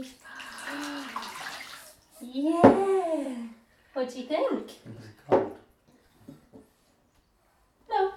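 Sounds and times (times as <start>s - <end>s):
speech: 0.0s - 0.9s, 2.2s - 3.4s, 4.0s - 5.4s
warm water poured from a jug splashing over feet in a bath: 0.0s - 2.2s.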